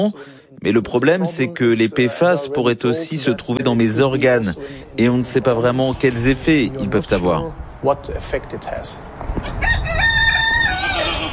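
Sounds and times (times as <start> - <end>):
speech: 0.0 - 9.8
rooster crowing in a garden: 9.4 - 11.3.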